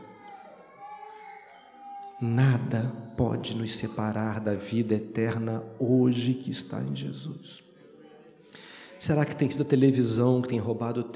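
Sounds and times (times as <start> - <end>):
child crying in a reverberant room: 0.0 - 2.7
speech: 2.2 - 7.7, 8.6 - 11.1.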